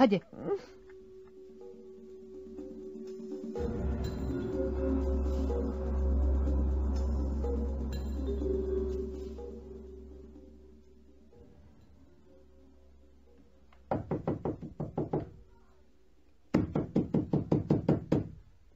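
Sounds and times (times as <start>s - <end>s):
low hum: 0.3s - 13.7s
hard knocking on a house door: 13.9s - 15.4s, 16.5s - 18.4s.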